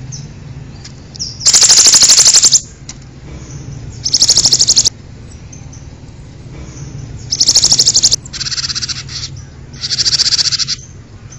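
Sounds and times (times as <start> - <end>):
bird giving loud dry buzzy trills: 0.0 - 11.3
low background hum: 0.0 - 11.3.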